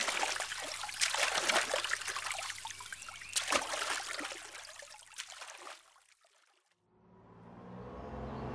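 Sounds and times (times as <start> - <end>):
boat being paddled through water: 0.0 - 6.8.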